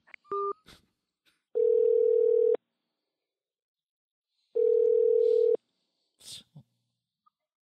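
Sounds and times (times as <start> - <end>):
telephone line tone as a call is placed: 1.6 - 2.6, 4.6 - 5.6.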